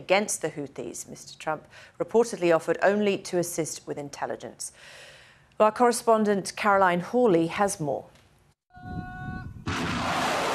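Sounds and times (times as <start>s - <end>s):
speech: 0.0s - 8.2s
ballistic missiles being fired: 9.6s - 10.5s.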